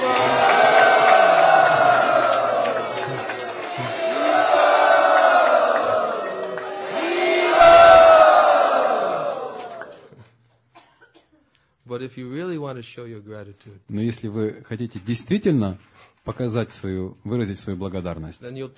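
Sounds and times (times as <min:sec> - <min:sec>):
large crowd shouting in unison: 0:00.0 - 0:10.1
applause: 0:00.0 - 0:10.4
speech: 0:12.1 - 0:18.7.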